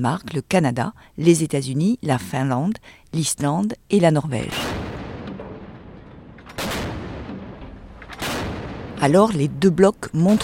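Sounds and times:
speech: 0.0 - 4.8, 9.0 - 10.4
heavy artillery fire from warships during combat training: 4.4 - 9.5
sharp cracks: 4.5 - 9.4
constant roaring rumbling background: 4.7 - 9.5.

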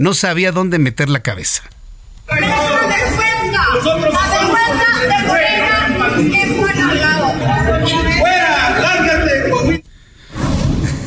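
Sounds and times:
speech: 0.0 - 3.0, 6.2 - 8.4
large crowd shouting and jeering at a politician in Coahuila: 2.3 - 9.8.

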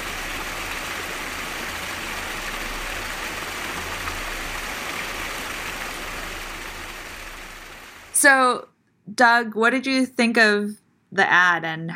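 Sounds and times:
water rushing in a stream and waterfalls: 0.0 - 8.2
speech: 8.2 - 11.9.

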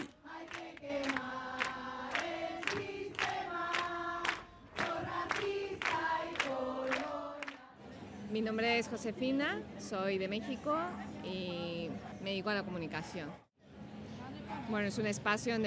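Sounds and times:
crowd of marchers chanting slogans in unison during street march: 0.0 - 7.9
speech: 8.4 - 13.4, 14.7 - 15.6.

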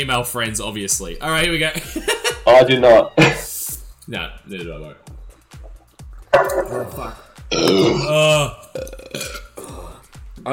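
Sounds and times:
speech: 0.0 - 3.5, 4.1 - 5.2, 6.7 - 9.4
laughter: 1.6 - 3.3
person belching: 7.5 - 9.8.

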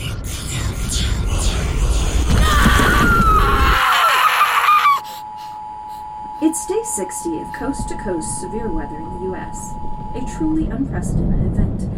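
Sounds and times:
rumbling noisy background: 0.0 - 11.9
person screaming: 2.3 - 5.2
speech: 7.0 - 11.9.

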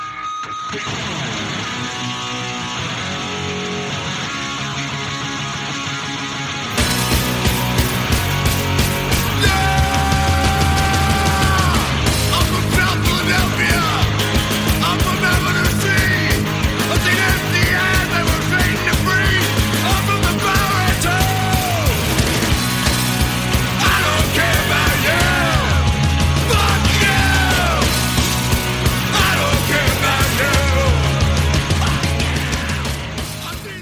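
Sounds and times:
heavy distorted guitars: 0.0 - 33.8
pounding drums: 6.8 - 33.8
raw shouted lead vocal: 9.1 - 33.8.

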